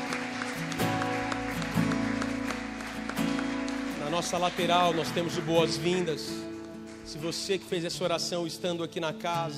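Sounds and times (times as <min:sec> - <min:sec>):
congregation clapping in a large room: 0:00.0 - 0:09.4
speech: 0:04.2 - 0:06.5, 0:07.1 - 0:09.5.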